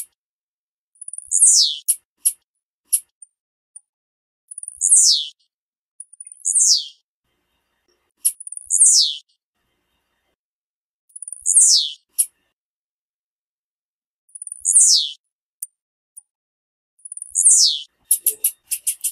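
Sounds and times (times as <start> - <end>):
female blue-black grassquit short ticks and sharp clicks: 1.0 - 3.3, 4.5 - 5.3, 6.0 - 6.5, 8.2 - 8.8, 11.1 - 12.3, 14.3 - 15.2, 17.0 - 19.1
female blue-black grassquit high thin descending calls: 1.1 - 3.0, 4.8 - 5.4, 6.2 - 7.0, 8.2 - 9.2, 11.2 - 12.3, 14.6 - 15.2, 17.1 - 19.1.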